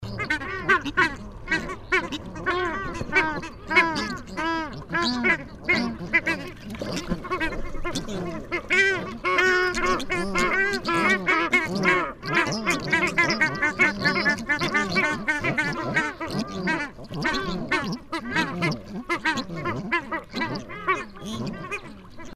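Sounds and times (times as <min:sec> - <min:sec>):
Australian shelduck calling: 0:00.1 - 0:22.3.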